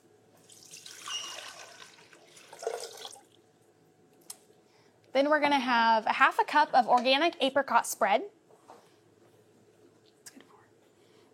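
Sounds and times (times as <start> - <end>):
water pouring into a container for apricot ginger sauce: 0.4 - 3.4
speech: 5.2 - 8.4.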